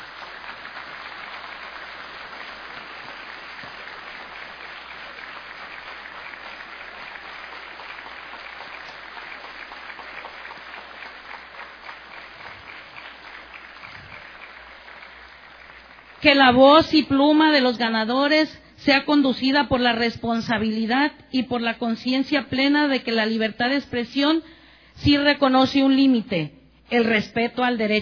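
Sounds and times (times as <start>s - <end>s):
large audience applauding award winners: 0.0s - 16.2s
speech: 16.2s - 28.0s.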